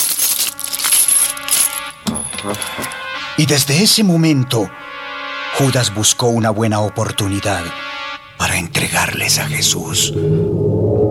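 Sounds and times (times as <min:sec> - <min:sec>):
silver coins clinking and jingling: 0:00.0 - 0:03.2
speech: 0:02.4 - 0:04.9, 0:05.6 - 0:11.0.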